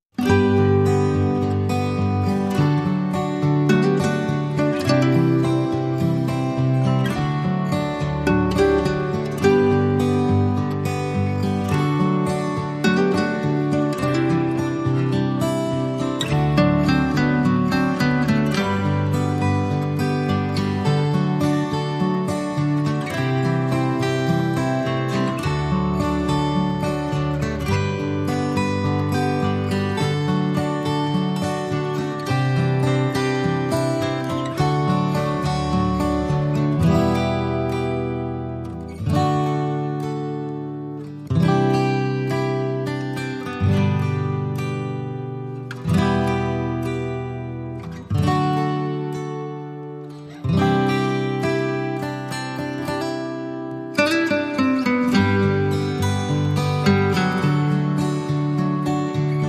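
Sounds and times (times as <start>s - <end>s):
acoustic guitars playing: 0.0s - 59.4s.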